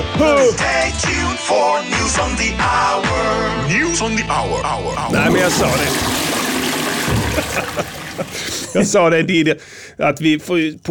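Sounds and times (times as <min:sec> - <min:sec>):
speech: 0:00.2 - 0:06.4, 0:07.4 - 0:10.8
laughter: 0:04.3 - 0:09.5
fizzy drink pouring into a glass: 0:05.0 - 0:08.6.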